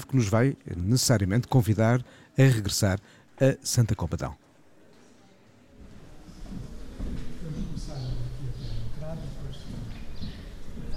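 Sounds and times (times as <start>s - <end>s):
speech: 0.0s - 4.4s
general noise: 0.0s - 10.9s
small birds chirping outdoors: 7.9s - 10.9s.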